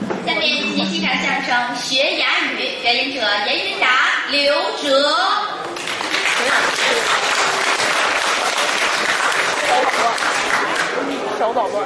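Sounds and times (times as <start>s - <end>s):
speech: 1.1s - 5.5s, 11.4s - 11.8s
dense applause from a large audience: 5.7s - 11.0s.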